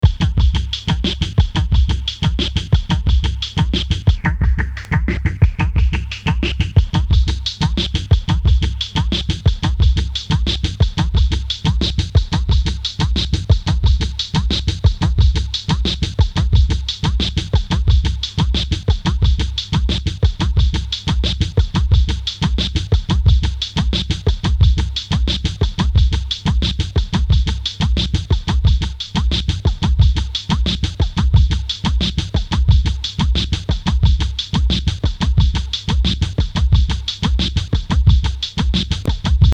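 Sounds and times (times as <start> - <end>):
filtered beat loop: 0.0 - 39.5.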